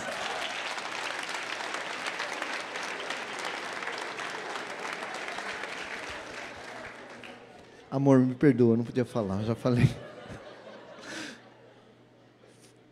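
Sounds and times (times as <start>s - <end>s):
laughter: 0.0s - 1.0s, 9.5s - 12.2s
crowd applauding: 0.0s - 7.8s
speech: 7.9s - 10.1s.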